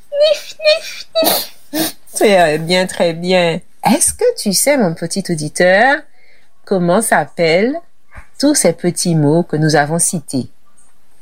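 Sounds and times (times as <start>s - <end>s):
person imitating sniffling before crying: 0.4s - 2.2s
speech: 2.2s - 6.1s, 6.7s - 10.6s.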